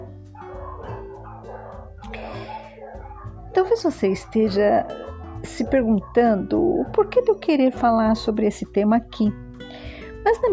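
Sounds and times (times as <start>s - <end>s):
dog barking and whimpering: 0.4s - 7.6s
speech: 3.6s - 9.4s, 10.2s - 10.5s.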